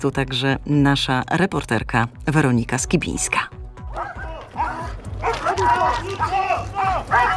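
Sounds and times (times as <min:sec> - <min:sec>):
speech: 0:00.0 - 0:04.2
police patrol-tracking dogs and railway protection service dogs barking during training: 0:03.8 - 0:07.3
police and railway service dogs yipping and whining: 0:03.9 - 0:06.3.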